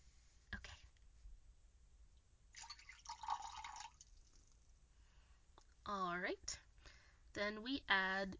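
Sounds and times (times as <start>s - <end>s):
thick tree syrup pouring into a container: 2.5s - 4.6s
speech: 5.9s - 6.6s, 7.4s - 8.3s.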